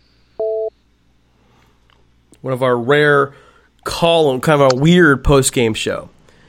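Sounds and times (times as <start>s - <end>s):
hum: 0.0s - 6.4s
two-pitch electronic telephone dialing tone: 0.4s - 0.7s
speech: 2.4s - 6.2s.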